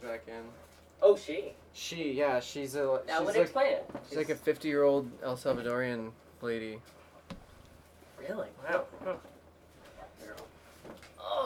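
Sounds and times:
speech: 0.1s - 7.0s, 8.2s - 9.3s
soft knocks and shuffles: 6.8s - 11.0s.

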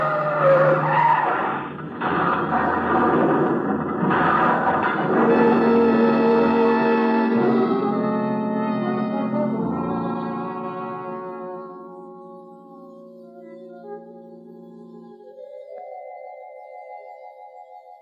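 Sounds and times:
roaring car engine: 0.0s - 11.2s
car tires screeching while skidding off a curve: 0.0s - 11.3s.

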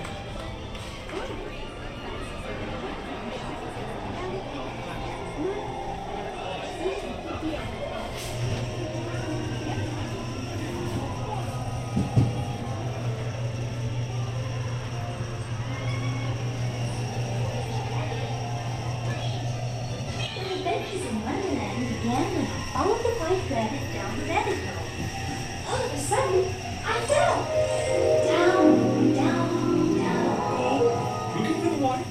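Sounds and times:
theme park crowd chatter: 0.0s - 32.0s
low mechanical hum of theme park ride machinery: 7.7s - 32.0s.

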